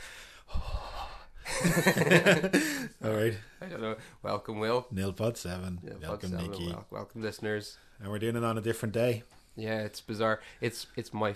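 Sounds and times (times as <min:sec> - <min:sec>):
heavy airy breathing against the microphone: 0:00.0 - 0:01.6, 0:02.4 - 0:04.2
laughter: 0:01.5 - 0:03.0
speech: 0:01.6 - 0:11.3.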